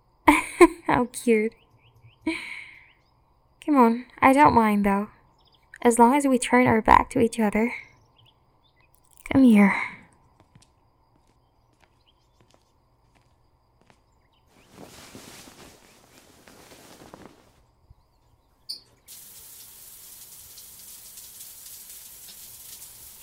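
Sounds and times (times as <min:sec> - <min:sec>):
speech: 0:00.6 - 0:01.6, 0:02.3 - 0:02.6, 0:03.7 - 0:05.2, 0:05.8 - 0:07.9, 0:09.3 - 0:10.0
rustling noise: 0:11.2 - 0:19.1
shower water running: 0:19.1 - 0:23.2.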